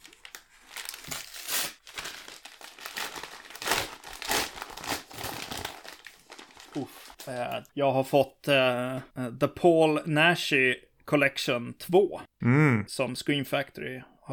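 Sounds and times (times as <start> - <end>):
package containing a film collection being torn open: 0.0 - 7.4
plastic wrapping crinkling as a package is torn open: 0.0 - 7.7
speech: 6.8 - 14.3.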